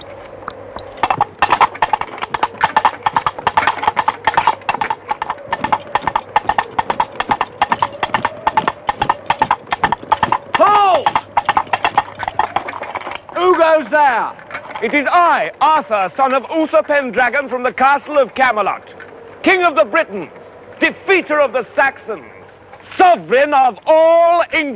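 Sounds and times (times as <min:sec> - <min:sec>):
coconut halves knocked together imitating horse hooves trotting: 0:00.0 - 0:24.7
speech: 0:14.8 - 0:22.3, 0:23.1 - 0:24.7.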